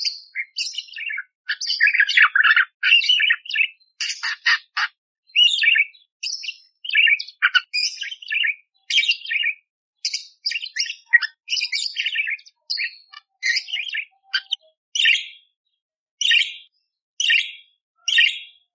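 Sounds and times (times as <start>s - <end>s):
budgerigar warbling song with chirps, squawks and clicks: 0.0s - 15.4s.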